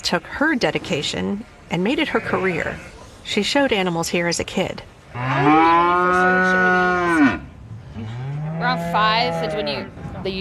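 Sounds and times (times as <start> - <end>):
speech: 0.1 - 7.4, 8.6 - 10.3
cow mooing: 5.1 - 9.9.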